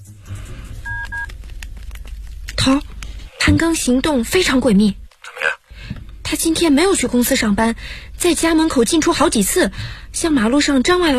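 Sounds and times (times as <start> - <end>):
low hum: 0.0 - 11.1
dual-tone keypad beeps from a telephone being dialled: 0.9 - 1.3
speech: 2.6 - 5.0, 6.4 - 11.1.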